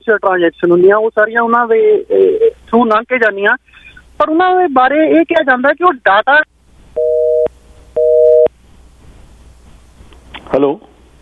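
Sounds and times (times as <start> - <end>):
speech: 0.0 - 6.5, 10.5 - 10.9
telephone busy tone after a caller's line disconnected: 7.0 - 8.5.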